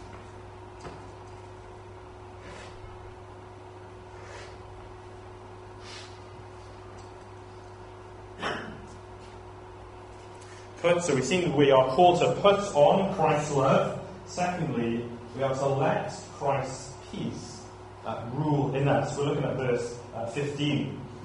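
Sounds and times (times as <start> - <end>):
steady electrical hum: 0.0 - 21.2
nose blowing: 5.8 - 6.3
speech: 10.8 - 17.4, 18.3 - 21.0.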